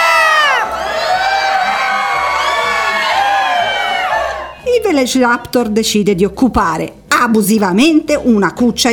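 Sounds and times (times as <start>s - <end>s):
crowd of people in a city screaming in panic as they flee: 0.0s - 4.7s
speech: 5.0s - 8.9s.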